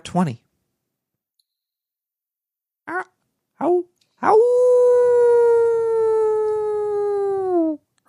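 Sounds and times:
speech: 0.1 - 0.4, 2.9 - 4.6
wolf-like howling: 4.2 - 7.6.

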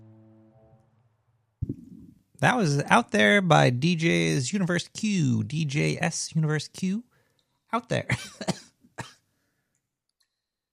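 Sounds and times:
speech: 2.4 - 7.1, 7.7 - 8.6
sharp cough: 8.0 - 9.2.

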